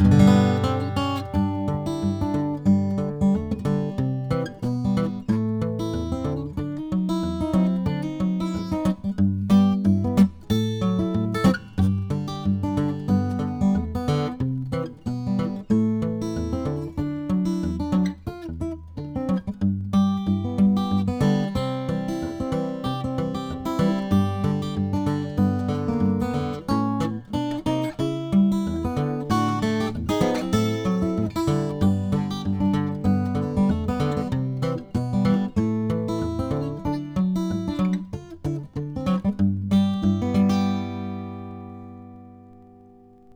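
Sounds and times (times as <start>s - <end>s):
Gibson J-35 acoustic guitar: 0.0s - 43.3s.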